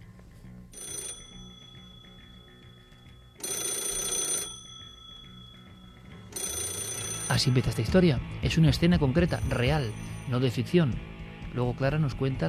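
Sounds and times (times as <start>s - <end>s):
old black telephone bell ringing: 0.8s - 7.9s, 9.3s - 10.5s
speech: 7.4s - 12.4s.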